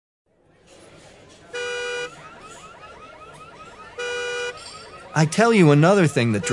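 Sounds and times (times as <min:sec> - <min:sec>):
car alarm wailing and honking: 0:01.5 - 0:06.5
speech: 0:05.2 - 0:06.5.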